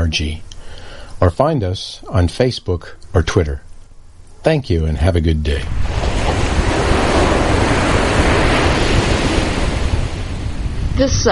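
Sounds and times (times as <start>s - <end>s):
speech: 0.0s - 0.5s, 1.2s - 3.6s, 4.4s - 6.0s, 11.0s - 11.3s
faint breezy hiss: 0.0s - 11.3s
ocean waves lapping on the shore: 5.7s - 11.3s.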